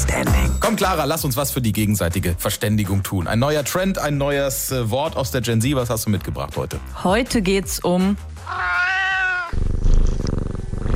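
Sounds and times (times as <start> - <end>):
speech: 0.2 - 8.8
cat purring: 8.5 - 10.9.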